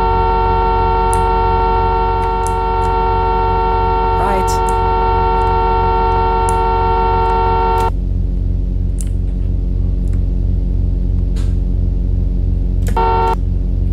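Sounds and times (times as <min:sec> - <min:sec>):
car horn honking: 0:00.0 - 0:07.9, 0:12.9 - 0:13.4
constant droning engine hum: 0:00.0 - 0:13.9.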